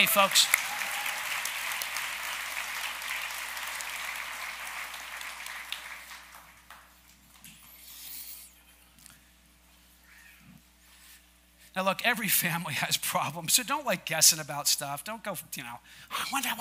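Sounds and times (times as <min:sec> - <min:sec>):
speech: 0:00.0 - 0:00.7, 0:11.8 - 0:16.5
large audience applauding staff and elders: 0:00.0 - 0:07.4.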